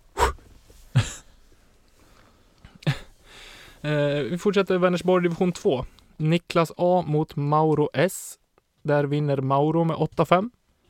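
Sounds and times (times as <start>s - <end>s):
sharp deep breaths drawn in and pushed out: 0.1s - 3.9s
speech: 3.8s - 10.6s.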